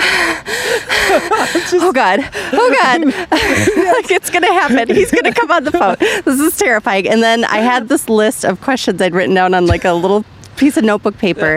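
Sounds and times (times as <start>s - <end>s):
nervous panting: 0.0s - 4.1s
laughter: 0.6s - 6.5s
speech: 1.7s - 11.5s.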